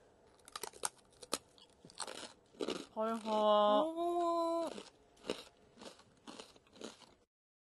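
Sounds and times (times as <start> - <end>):
person chewing something brittle: 0.3 - 3.4, 4.6 - 7.3
speech: 3.0 - 4.1.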